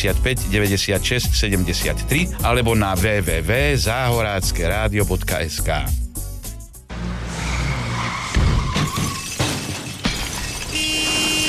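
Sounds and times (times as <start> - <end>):
speech: 0.0 - 6.0
car tires skidding: 6.9 - 9.8
car slamming into something with a crunch: 6.9 - 11.4
debris scattering: 8.2 - 11.4
glass shattering: 8.2 - 11.4.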